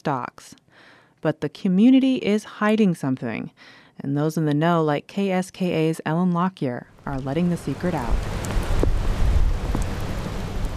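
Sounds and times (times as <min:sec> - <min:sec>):
speech: 0:00.0 - 0:00.6, 0:01.2 - 0:08.4
rain falling on a sideways-wind day in Portage: 0:07.0 - 0:10.7
wind howling: 0:07.0 - 0:10.7
raindrop ticks: 0:07.9 - 0:10.7.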